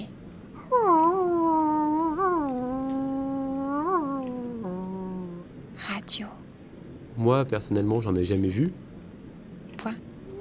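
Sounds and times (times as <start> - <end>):
person imitating a wolf howl: 0.6 - 5.4
speech: 6.1 - 6.4, 7.2 - 8.8, 9.8 - 10.1.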